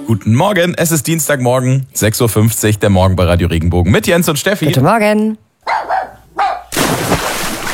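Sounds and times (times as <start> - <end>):
speech: 0.1 - 5.5
dog barking in a swimming pool: 5.6 - 6.8
water splashing in an outdoor swimming pool: 6.7 - 7.7.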